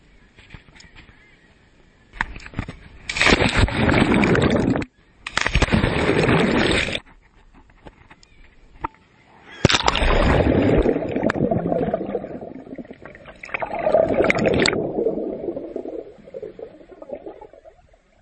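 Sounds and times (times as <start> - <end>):
water splashing at a lake beach: 3.0 - 7.0, 9.6 - 18.2.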